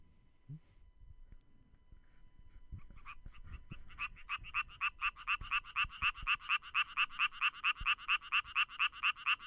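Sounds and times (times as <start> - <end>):
mating call of a frog infected with BD fungus: 4.0 - 9.4.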